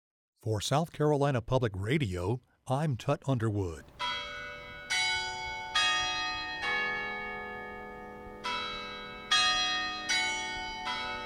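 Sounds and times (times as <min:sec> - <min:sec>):
speech: 0:00.4 - 0:04.0
church bells ringing in Charleston South Carolina: 0:03.8 - 0:11.2.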